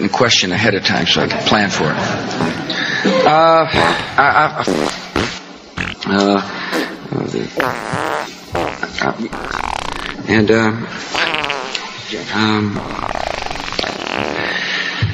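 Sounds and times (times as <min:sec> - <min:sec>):
speech: 0:00.0 - 0:05.0, 0:06.1 - 0:09.7, 0:10.3 - 0:11.2, 0:12.1 - 0:13.2
loud sputtering fart noises: 0:02.3 - 0:03.0, 0:03.7 - 0:10.3, 0:11.1 - 0:14.7.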